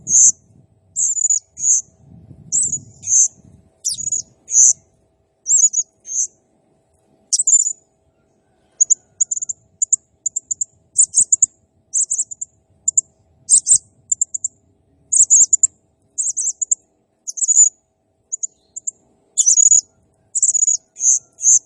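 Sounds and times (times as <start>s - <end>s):
blue-crowned hanging parrot singing high thin squeaky chirps: 0.0s - 0.4s, 1.0s - 1.9s, 2.5s - 4.8s, 5.4s - 6.3s, 7.3s - 7.8s, 8.8s - 14.5s, 15.1s - 17.7s, 18.3s - 21.6s.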